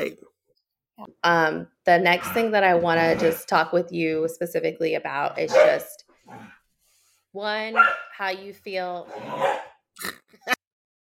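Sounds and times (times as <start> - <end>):
speech: 1.0 - 6.6, 7.3 - 10.6
dog barking in short yelps: 5.5 - 6.5, 7.7 - 8.2, 9.1 - 9.8.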